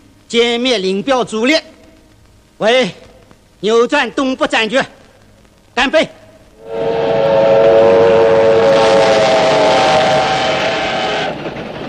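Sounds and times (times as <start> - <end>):
speech: 0.3 - 1.8, 2.6 - 3.0, 3.6 - 5.0, 5.8 - 7.0
military train horn drone: 6.6 - 11.4
military train rushing rail noise at night: 6.6 - 11.8.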